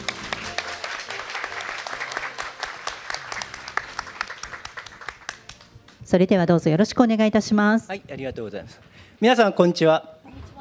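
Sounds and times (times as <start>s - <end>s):
audience applause at a company investor-relations seminar: 0.0s - 5.7s
speech: 6.1s - 10.2s.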